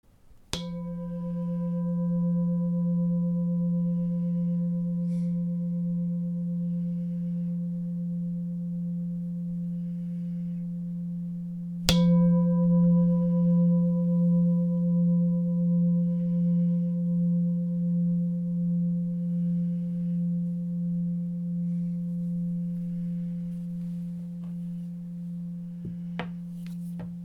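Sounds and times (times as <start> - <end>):
chakra singing bowl: 0.5 - 27.2.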